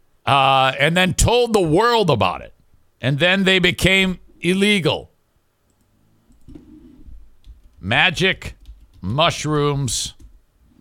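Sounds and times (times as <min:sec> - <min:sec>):
low steady hum: 0:00.0 - 0:10.8
speech: 0:00.3 - 0:05.1, 0:07.8 - 0:10.2
computer keyboard typing clicks: 0:07.4 - 0:07.8, 0:08.6 - 0:09.1.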